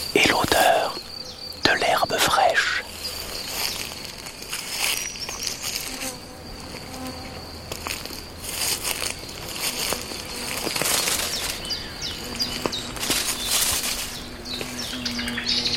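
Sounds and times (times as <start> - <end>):
birdsong: 0.0 - 4.2, 9.1 - 15.7
insects: 0.0 - 15.7.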